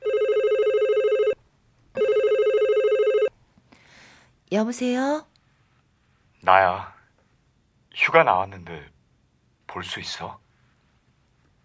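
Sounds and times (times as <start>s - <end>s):
telephone ringing with electronic trilling: 0.0s - 1.4s, 2.0s - 3.3s
speech: 4.5s - 5.3s, 6.4s - 7.0s, 8.0s - 8.9s, 9.7s - 10.4s.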